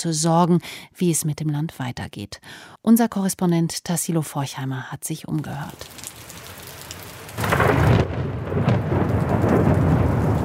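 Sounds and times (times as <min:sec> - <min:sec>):
speech: 0:00.0 - 0:06.0
heavy rain pattering on a hard street: 0:05.7 - 0:10.4
deep thunder rumble: 0:05.8 - 0:10.4.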